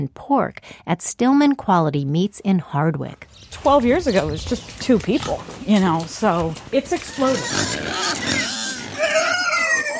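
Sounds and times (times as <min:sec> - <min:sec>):
speech: 0:00.0 - 0:08.4
piglets bred from heritage sows grunting on a farm: 0:05.1 - 0:09.9
piglets bred from heritage sows squealing on a farm: 0:07.0 - 0:09.9.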